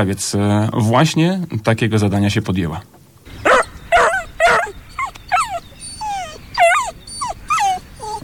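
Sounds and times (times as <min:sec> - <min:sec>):
speech: 0:00.0 - 0:03.0
dog barking on a walk: 0:03.3 - 0:08.2.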